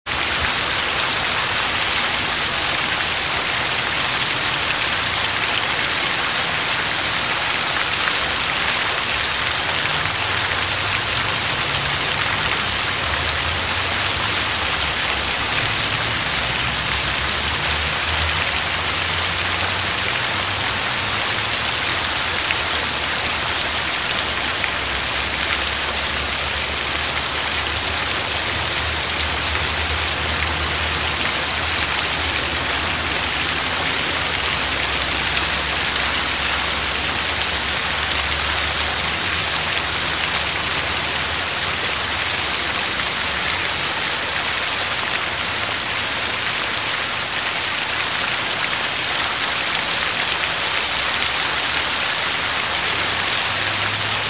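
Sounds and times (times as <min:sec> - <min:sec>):
large city fountain splashing: 0:00.0 - 0:54.2.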